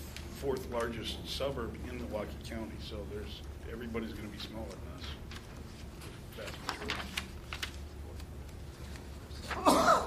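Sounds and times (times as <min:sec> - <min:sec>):
low hum: 0:00.0 - 0:10.0
speech: 0:00.4 - 0:05.3, 0:06.4 - 0:07.2
person sneezing during a meeting: 0:09.5 - 0:10.0.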